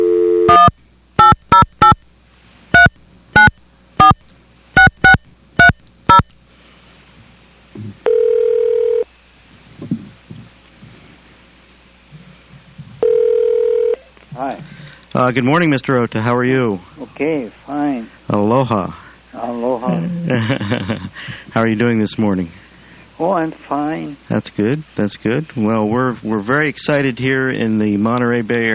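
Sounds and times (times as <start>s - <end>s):
touch-tone keypad beeps dialing a telephone number: 0.5s - 2.0s, 2.8s - 4.2s, 4.8s - 6.3s
telephone ringback tone: 8.0s - 9.0s, 13.0s - 14.0s
speech: 15.2s - 22.6s, 23.2s - 28.7s
laughter: 19.8s - 21.6s.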